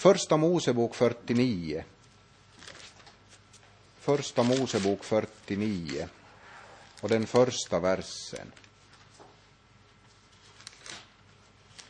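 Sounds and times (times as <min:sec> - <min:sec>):
speech: 0:00.0 - 0:02.0, 0:04.0 - 0:06.2, 0:07.0 - 0:08.6
pages of a Bible being flipped: 0:02.1 - 0:06.1, 0:06.8 - 0:09.4, 0:10.0 - 0:11.8.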